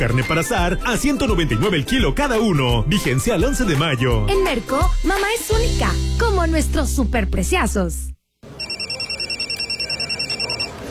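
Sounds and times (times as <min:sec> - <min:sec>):
speech: 0:00.0 - 0:08.1
telephone ringing with a fast trilling bell: 0:08.6 - 0:10.8.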